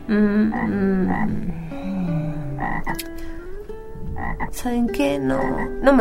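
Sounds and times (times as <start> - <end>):
speech: 0.1 - 2.0, 2.6 - 3.3, 4.2 - 6.0
toad croaking loudly with throaty buzzing calls: 0.4 - 1.6, 2.2 - 3.2, 4.1 - 4.6, 5.3 - 5.8.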